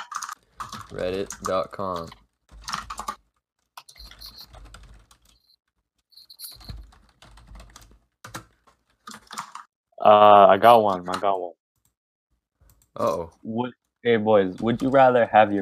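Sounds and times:
computer keyboard typing: 0:00.0 - 0:05.6, 0:06.2 - 0:09.7
speech: 0:00.9 - 0:02.2, 0:10.1 - 0:11.6, 0:13.0 - 0:15.5.

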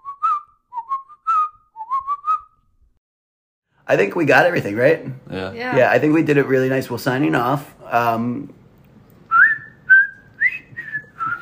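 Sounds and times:
person whistling a short wavering tune: 0:00.0 - 0:02.6, 0:09.3 - 0:11.4
speech: 0:03.9 - 0:08.6.

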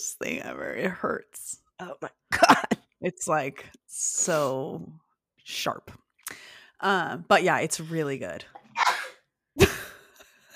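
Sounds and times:
speech: 0:00.0 - 0:08.9
sneeze: 0:08.7 - 0:09.2.

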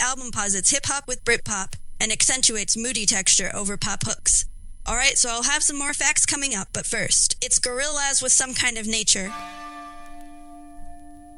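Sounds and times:
speech: 0:00.2 - 0:09.6
bell ringing at end of song: 0:09.3 - 0:11.3.

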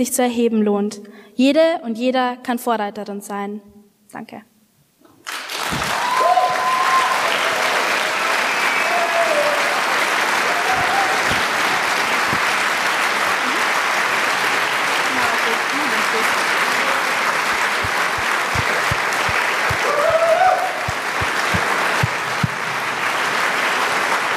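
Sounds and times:
speech: 0:00.0 - 0:04.5
large audience applauding a speech: 0:05.2 - 0:24.3
faint voices and cheers: 0:05.7 - 0:12.6, 0:15.0 - 0:22.1.

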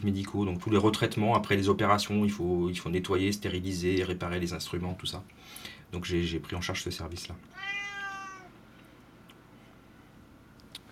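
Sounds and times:
speech: 0:00.0 - 0:07.8
cat meowing: 0:07.5 - 0:08.6.

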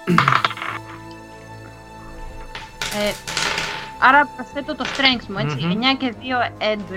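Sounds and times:
speech: 0:00.0 - 0:00.5, 0:03.0 - 0:03.3, 0:04.0 - 0:06.9
twenty-sided die clattering across a tabletop: 0:00.2 - 0:01.0, 0:02.5 - 0:04.1, 0:04.8 - 0:05.4.

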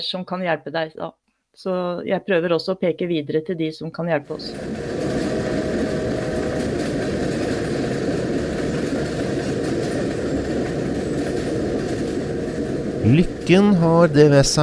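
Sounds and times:
speech: 0:00.0 - 0:04.9, 0:13.1 - 0:14.6
train rolling on rails: 0:04.3 - 0:14.6.

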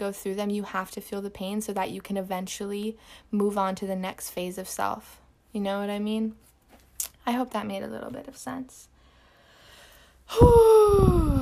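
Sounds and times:
speech: 0:00.0 - 0:08.9, 0:10.3 - 0:11.4
deep gasp-like breath drawn in sharply with faint voiced tone: 0:09.0 - 0:11.0.

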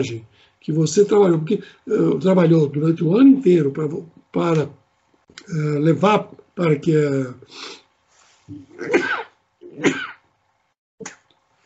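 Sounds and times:
speech: 0:00.0 - 0:04.8, 0:05.4 - 0:07.8, 0:08.5 - 0:10.1
short sharp sniff: 0:07.5 - 0:08.5
person sneezing with a breathy build-up: 0:08.5 - 0:10.2.

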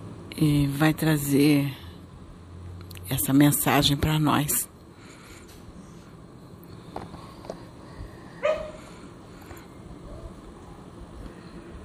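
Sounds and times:
steady low hum: 0:00.0 - 0:11.8
speech: 0:00.4 - 0:01.8, 0:03.1 - 0:04.7
single sharp bark from a small dog: 0:08.4 - 0:08.8.

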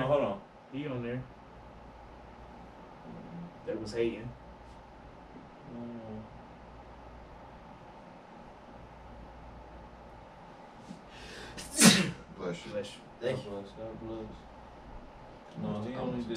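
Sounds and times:
low hum: 0:00.0 - 0:16.3
speech: 0:00.1 - 0:01.4, 0:03.1 - 0:04.4, 0:05.7 - 0:06.4, 0:12.5 - 0:14.5, 0:15.6 - 0:16.3
sneeze: 0:11.5 - 0:12.2.

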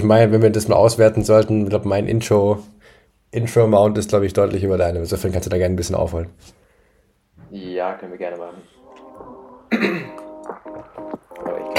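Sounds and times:
speech: 0:00.0 - 0:06.6, 0:07.5 - 0:11.7
person clearing throat: 0:09.7 - 0:10.4.

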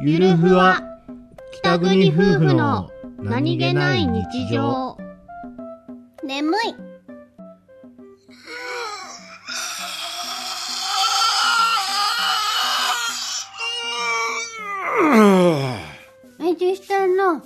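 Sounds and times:
speech: 0:00.0 - 0:00.9, 0:01.5 - 0:05.0, 0:06.3 - 0:06.8
person groaning while suddenly stretching: 0:08.4 - 0:16.0.

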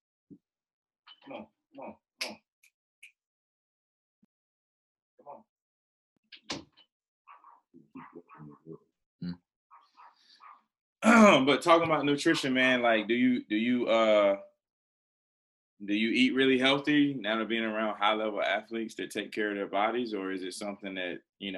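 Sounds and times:
speech: 0:01.3 - 0:02.4, 0:11.0 - 0:14.5, 0:15.8 - 0:21.5
dog yelping and whining barks: 0:07.3 - 0:08.5, 0:09.7 - 0:10.6.

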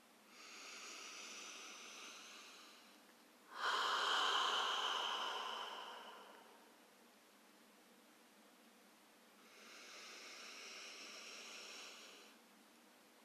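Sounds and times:
deep slow breathing: 0:00.0 - 0:06.8, 0:09.4 - 0:12.4.

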